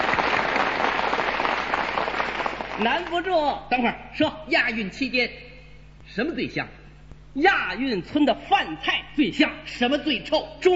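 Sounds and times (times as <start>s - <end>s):
audience applause: 0.0s - 3.1s
speech: 2.8s - 5.5s, 6.1s - 6.8s, 7.4s - 10.7s.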